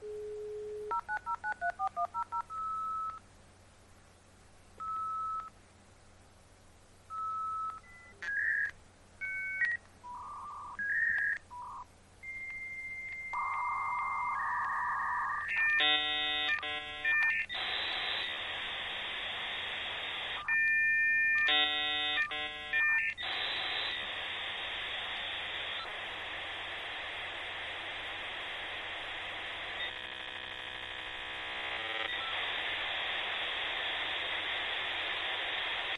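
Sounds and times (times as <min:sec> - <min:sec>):
dial-up modem: 0:00.0 - 0:03.2, 0:04.8 - 0:05.5, 0:07.1 - 0:35.9.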